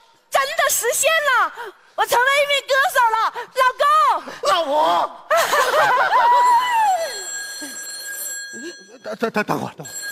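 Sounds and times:
speech: 0.7s - 6.8s, 9.0s - 10.1s
laughter: 5.3s - 7.8s
warbling electronic phone ringtone: 6.9s - 9.2s, 9.8s - 10.1s.

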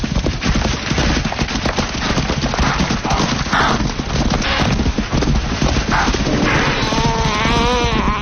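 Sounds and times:
hunting lion's heavy footsteps: 0.0s - 8.2s
wildebeest herd hooves stampeding through dry grass: 0.0s - 8.2s
animal calls: 2.6s - 4.8s, 5.9s - 8.2s.

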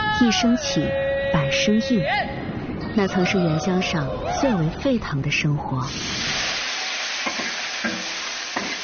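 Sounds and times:
speech: 0.2s - 2.4s, 2.9s - 6.3s
food stir-frying in a wok on a stove: 5.9s - 8.8s.

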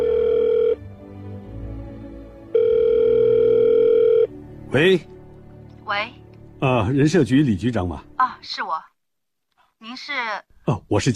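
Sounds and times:
telephone ringback tone after dialing: 0.0s - 0.8s, 2.5s - 4.3s
speech: 4.7s - 5.1s, 5.9s - 8.9s, 10.0s - 11.1s.

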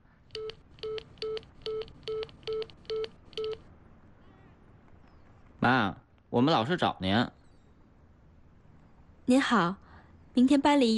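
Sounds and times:
faint hiss: 0.0s - 10.9s
telephone being dialed with DTMF keypad beeps: 0.3s - 3.6s
speech: 5.6s - 7.4s, 9.3s - 9.8s, 10.4s - 10.9s.

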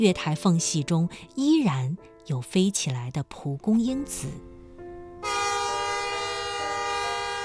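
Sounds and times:
speech: 0.0s - 4.5s
train whistle blowing as train departs: 5.2s - 7.4s.

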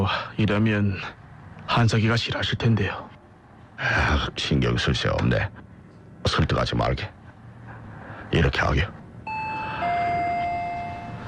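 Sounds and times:
speech: 0.0s - 3.1s, 3.8s - 5.6s, 6.2s - 7.2s, 8.3s - 9.0s
two-tone doorbell chime: 9.3s - 11.2s.

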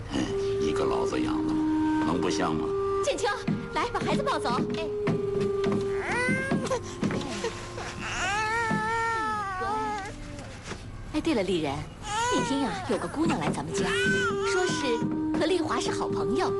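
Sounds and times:
steady noise: 0.0s - 16.5s
baby crying and wailing: 5.8s - 10.6s, 12.0s - 15.1s.

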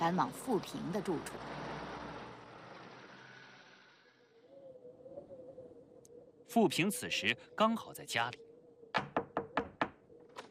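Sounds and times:
speech: 0.0s - 1.6s, 6.6s - 8.5s
knocking on a wooden door: 9.0s - 10.0s.

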